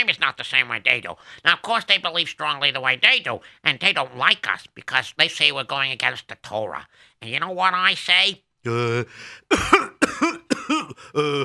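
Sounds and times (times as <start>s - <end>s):
speech: 0.0s - 10.3s, 11.0s - 11.4s
short vocal sound: 8.7s - 11.4s
loud harsh coughs: 9.5s - 11.4s.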